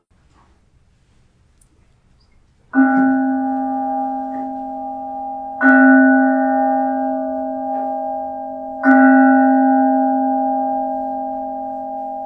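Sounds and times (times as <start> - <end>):
bell ringing at a Sunday spiritual celebration in Huntsville, Alabama: 2.7 - 12.2.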